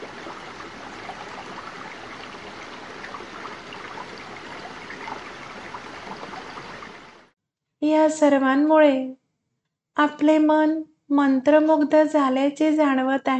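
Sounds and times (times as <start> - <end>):
river water babbling on the bank of the Ganges: 0.0 - 7.3
speech: 7.8 - 9.2, 10.0 - 13.3.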